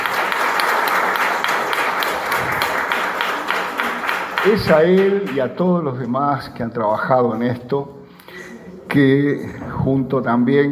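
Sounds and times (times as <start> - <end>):
crowd applauding: 0.0 - 5.5
speech: 4.4 - 8.0, 8.9 - 10.6.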